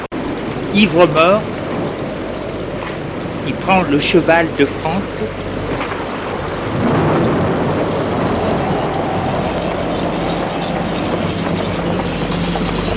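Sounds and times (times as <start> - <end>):
deep rumble of thunder in a night thunderstorm: 0.0 - 12.9
steady wash of rain in a night thunderstorm: 0.0 - 12.9
speech: 0.7 - 1.5, 3.4 - 5.8.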